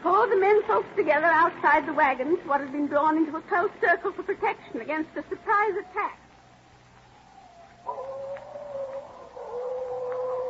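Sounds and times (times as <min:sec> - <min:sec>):
faint hissing background: 0:00.0 - 0:10.4
speech: 0:00.7 - 0:06.2
coyotes howling at night: 0:04.9 - 0:10.4.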